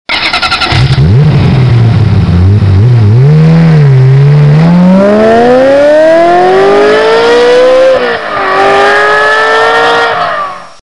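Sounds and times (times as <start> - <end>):
Honda sports car engine: 0.1 - 10.8.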